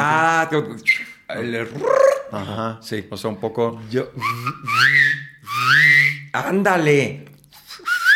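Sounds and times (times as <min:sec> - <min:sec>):
speech: 0:00.4 - 0:05.1, 0:05.7 - 0:07.3
person whistling with vibrato: 0:00.9 - 0:01.2, 0:04.2 - 0:06.3, 0:07.6 - 0:08.1.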